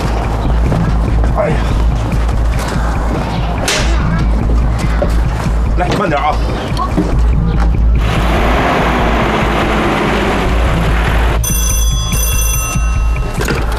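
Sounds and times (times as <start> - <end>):
steady engine-like rumbling noise: 0.0 - 11.4
telephone ringing with electronic trill: 11.4 - 13.7.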